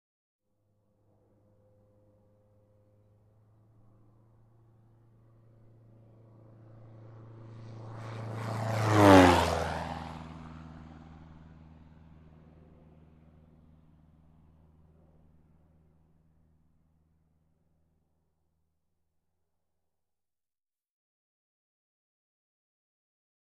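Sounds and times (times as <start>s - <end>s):
light aircraft whirring: 0.6s - 18.7s.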